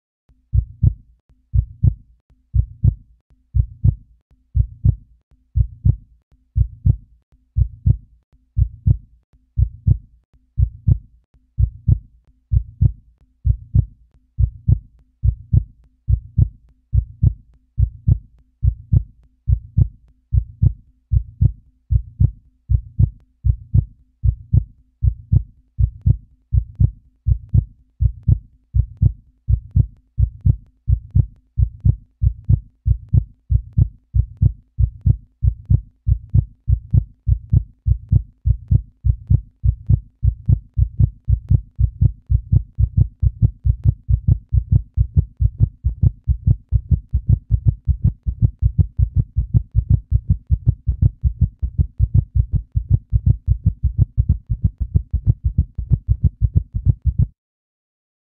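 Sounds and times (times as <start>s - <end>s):
fast heartbeat: 0.5s - 2.0s, 2.6s - 3.0s, 3.6s - 4.0s, 4.6s - 5.0s, 5.6s - 6.0s, 6.6s - 7.0s, 7.6s - 8.0s, 8.6s - 9.0s, 9.6s - 57.4s.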